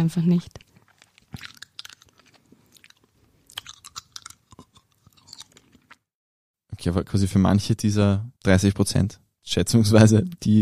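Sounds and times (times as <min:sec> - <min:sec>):
speech: 0:00.0 - 0:00.7, 0:06.8 - 0:10.5
wet smacking and chewing with small crunches: 0:00.4 - 0:06.1.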